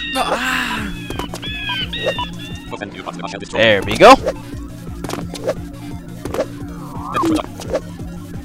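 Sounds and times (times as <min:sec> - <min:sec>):
speech: 0:00.1 - 0:01.0, 0:02.0 - 0:04.5, 0:05.4 - 0:05.7, 0:07.2 - 0:07.8
bird chirping and warbling: 0:01.0 - 0:02.7.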